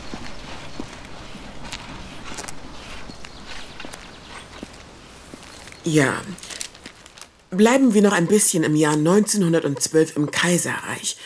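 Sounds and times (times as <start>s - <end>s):
footsteps of people walking along a street: 0.0s - 7.6s
hiss: 0.0s - 11.2s
speech: 5.9s - 6.4s, 7.5s - 11.2s.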